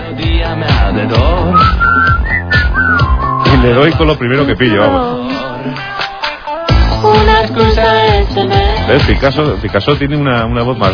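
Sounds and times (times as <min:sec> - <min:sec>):
speech: 0:00.1 - 0:05.8, 0:07.1 - 0:10.9
person whistling: 0:01.5 - 0:03.6.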